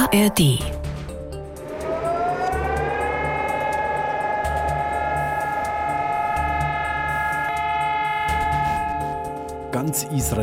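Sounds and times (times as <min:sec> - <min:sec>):
speech: 0:00.1 - 0:00.7, 0:09.8 - 0:10.4
memorial siren wailing across Israel on Holocaust Remembrance Day: 0:01.3 - 0:10.4.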